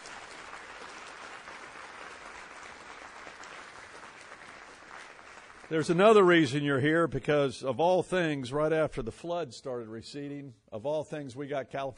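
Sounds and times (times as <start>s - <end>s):
large crowd applauding: 0.0s - 6.4s
speech: 5.7s - 11.9s.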